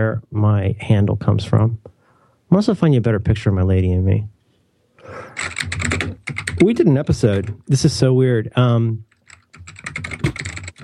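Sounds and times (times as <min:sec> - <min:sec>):
speech: 0:00.0 - 0:01.9, 0:02.5 - 0:04.3, 0:06.6 - 0:09.1
typing on a mechanical DOS computer keyboard: 0:05.4 - 0:07.6, 0:09.1 - 0:10.8.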